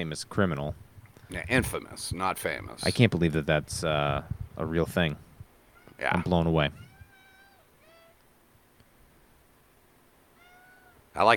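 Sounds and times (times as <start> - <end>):
speech: 0.0 - 5.3, 6.0 - 6.8, 11.2 - 11.3
steady hiss: 0.0 - 11.3
cat meowing: 5.8 - 6.1, 6.7 - 8.2, 10.4 - 11.1.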